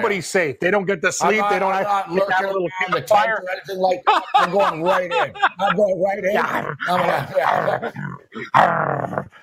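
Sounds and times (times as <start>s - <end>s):
speech: 0.0s - 9.4s
laughter: 2.2s - 8.6s
person vocalizing an angry wolf-like growl: 6.4s - 9.4s.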